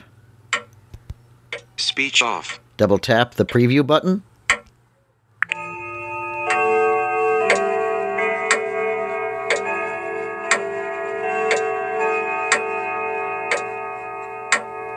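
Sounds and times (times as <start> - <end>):
grandfather clock ticking: 0.0 - 0.8, 1.5 - 4.7, 6.5 - 14.9
speech: 2.0 - 4.3
grandfather clock chimes: 5.5 - 14.9.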